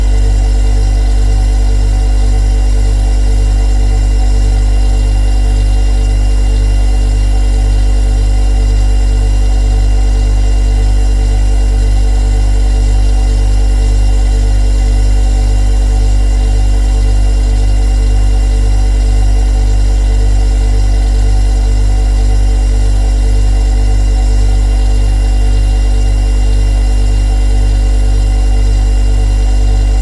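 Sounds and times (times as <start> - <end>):
refrigerator: 0.0 - 30.0.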